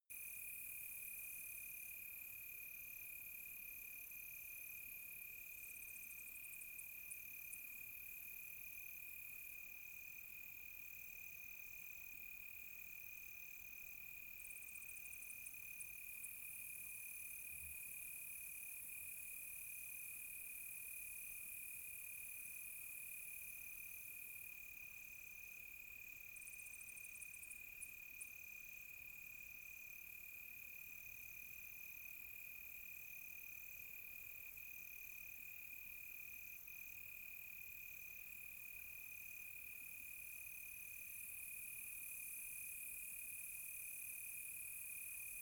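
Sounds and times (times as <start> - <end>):
close crickets on a quiet tropical night: 0.2 - 45.4.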